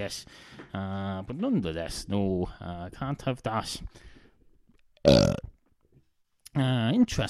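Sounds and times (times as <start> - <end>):
speech: 0.0 - 4.1, 5.0 - 5.4, 6.6 - 7.2
belch: 5.1 - 5.5.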